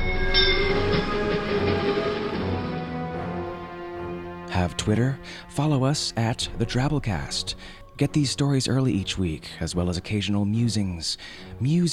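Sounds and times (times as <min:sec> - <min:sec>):
train passing on railroad tracks: 0:00.0 - 0:03.6
speech: 0:04.6 - 0:11.9.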